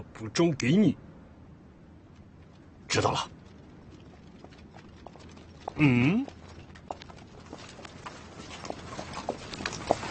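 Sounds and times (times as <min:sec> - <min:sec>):
speech: 0:00.2 - 0:01.1, 0:02.9 - 0:03.4, 0:05.8 - 0:06.4
faint hoofbeats from a horse carrying a rider: 0:02.5 - 0:10.0.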